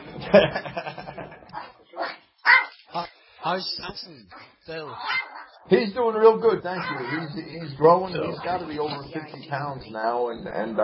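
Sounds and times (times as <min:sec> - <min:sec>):
laughter: 0:00.1 - 0:01.5
speech: 0:00.3 - 0:01.0, 0:03.5 - 0:10.8
dog barking and yipping: 0:01.6 - 0:02.8, 0:04.3 - 0:05.6, 0:06.7 - 0:07.4
dog yelping: 0:02.5 - 0:02.8, 0:04.4 - 0:05.6, 0:06.7 - 0:07.4.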